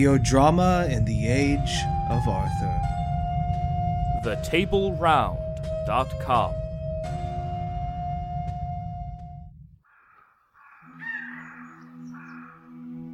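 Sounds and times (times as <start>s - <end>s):
speech: 0.0s - 2.9s, 4.2s - 7.2s
low rumbling drone: 0.0s - 9.8s
woodland birds cawing: 9.8s - 13.0s.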